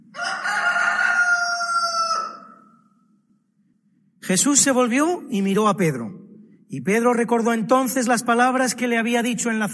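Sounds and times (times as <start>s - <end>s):
rooster crowing: 0.1s - 2.8s
speech: 4.3s - 9.7s.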